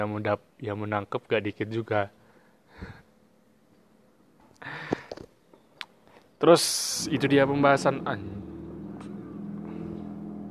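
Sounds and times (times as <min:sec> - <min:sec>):
speech: 0:00.0 - 0:02.2, 0:06.4 - 0:08.6
car engine rumbling as the vehicle moves past outside: 0:06.8 - 0:10.5.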